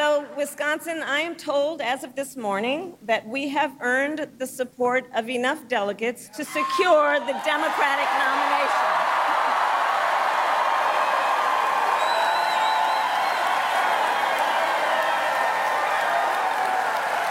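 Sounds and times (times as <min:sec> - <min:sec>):
speech: 0:00.4 - 0:09.0
large rally crowd applauding and cheering: 0:07.3 - 0:17.2
whistles and whoops from the crowd: 0:10.7 - 0:17.2.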